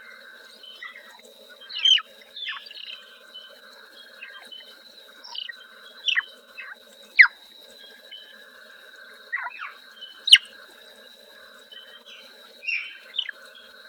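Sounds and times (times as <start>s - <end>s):
Swinhoe's frog chirping calls: 0.1s - 3.2s, 4.0s - 4.6s, 5.2s - 7.4s, 9.3s - 10.6s, 11.7s - 13.6s.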